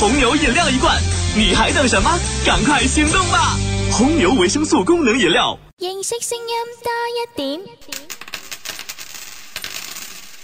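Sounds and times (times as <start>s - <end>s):
speech: 0.0s - 8.1s
coins dropping onto a floor: 8.0s - 10.4s.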